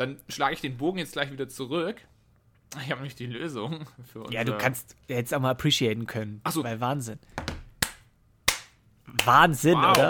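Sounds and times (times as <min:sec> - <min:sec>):
speech: 0:00.0 - 0:07.5, 0:09.1 - 0:10.0
sharp hand claps: 0:07.8 - 0:10.0.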